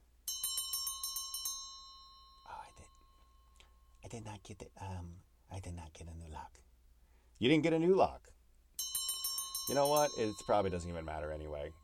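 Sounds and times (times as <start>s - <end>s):
bell ringing in rapid bright strikes: 0.3s - 4.0s, 8.8s - 11.8s
speech: 4.1s - 6.6s, 7.4s - 8.4s, 9.7s - 11.8s.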